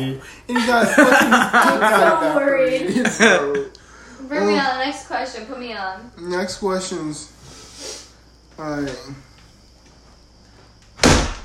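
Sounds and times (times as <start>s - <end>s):
speech: 0.0s - 3.7s, 4.3s - 8.0s, 8.6s - 9.3s
laughter: 0.4s - 3.8s
door being slammed: 11.0s - 11.4s.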